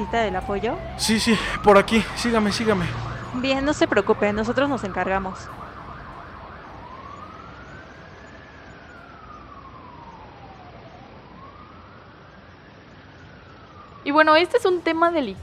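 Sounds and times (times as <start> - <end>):
speech: 0.0 - 5.6, 14.0 - 15.4
ambulance siren wailing: 0.0 - 15.4
road traffic rumble: 0.0 - 15.4.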